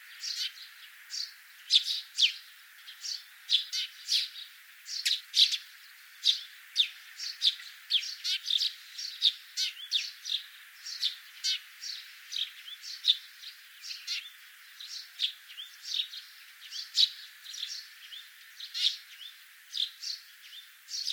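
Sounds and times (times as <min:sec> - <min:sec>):
several common sparrows chirping in a busy chorus: 0:00.0 - 0:21.1.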